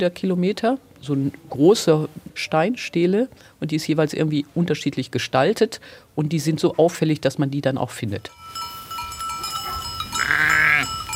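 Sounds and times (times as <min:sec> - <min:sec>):
speech: 0:00.0 - 0:08.7
sheep bleating in a pasture: 0:10.2 - 0:11.0.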